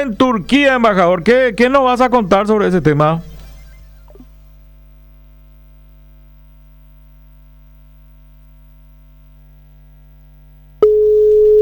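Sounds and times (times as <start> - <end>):
speech: 0.0 - 3.3
low electrical hum on a phone line: 0.0 - 11.5
phone line busy tone after a dropped call: 10.8 - 11.5.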